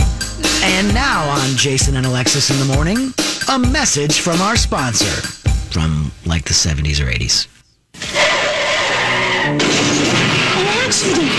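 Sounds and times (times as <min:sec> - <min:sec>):
speech: 0:00.8 - 0:08.2, 0:09.5 - 0:10.3, 0:10.9 - 0:11.3
car tires screeching in a long skid: 0:08.0 - 0:11.3.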